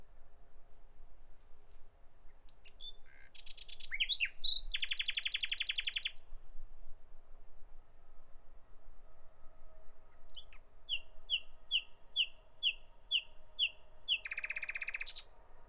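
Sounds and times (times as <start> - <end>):
common nightingale song: 2.3 - 6.4, 10.3 - 15.4.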